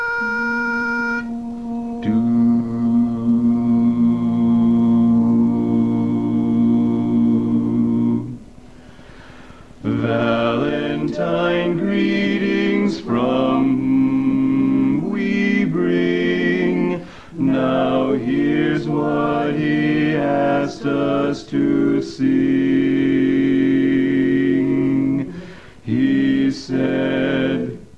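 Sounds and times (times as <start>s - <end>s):
barbershop quartet singing with bass voice in B flat: 0.2s - 27.9s.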